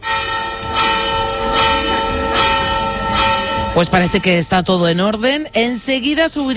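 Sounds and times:
church bells ringing: 0.0 - 5.2
speech: 3.8 - 6.5.

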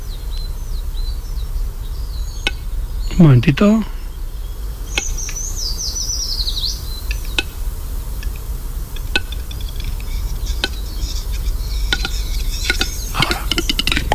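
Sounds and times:
steady low rumble: 0.0 - 14.1
speech: 3.2 - 3.9
thin high bird call: 4.8 - 14.1
western capercaillie popping clicks at a display ground: 6.8 - 14.1.

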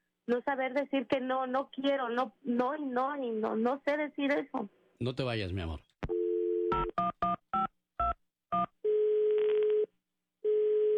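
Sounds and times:
speech: 0.3 - 5.9
brief steady telephone tone: 6.1 - 7.0, 8.8 - 10.9
long telephone ringing tones on an unanswered call: 6.1 - 10.9.

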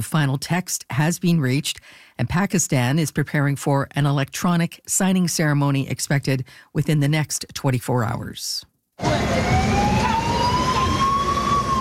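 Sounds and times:
speech: 0.0 - 10.3
UN escort vehicle siren wailing with a slowly rising tone: 9.0 - 11.8
engine noise: 9.0 - 11.8.

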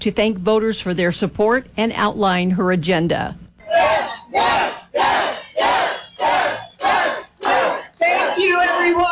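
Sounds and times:
speech: 0.0 - 5.2
large crowd chanting a candidate's name in unison on election night at Old Town Plaza in New Mexico: 3.7 - 9.0.

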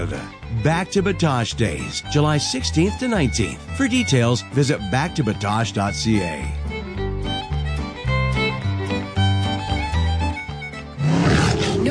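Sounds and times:
speech: 0.0 - 6.6
instrumental music with sustained notes: 0.0 - 11.3
tiger roar sound effect: 11.0 - 11.9.

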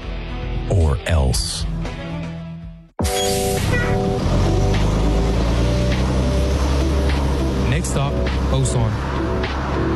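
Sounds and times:
speech: 0.7 - 1.9, 8.5 - 9.9
bus engine rumbling while driving between Kunsan and Osan: 3.2 - 9.9.

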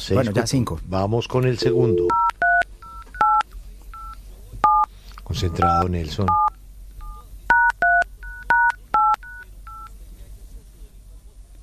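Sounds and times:
speech: 0.0 - 2.4, 5.3 - 6.5
telephone keypad tones beeping as a number is dialed: 1.6 - 3.4, 4.0 - 9.9.

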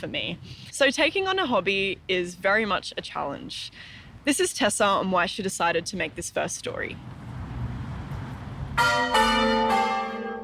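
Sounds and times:
speech: 0.0 - 7.2, 8.8 - 9.6
church bells ringing: 8.8 - 10.4.

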